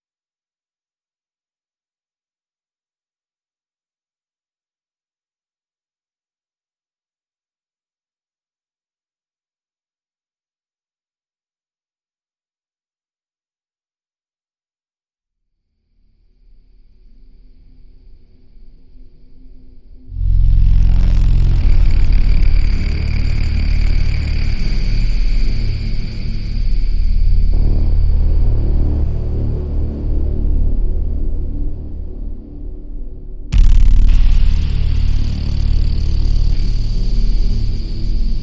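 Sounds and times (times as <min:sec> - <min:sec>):
ambient bass stabs: 0:20.1 - 0:32.5, 0:33.5 - 0:38.4.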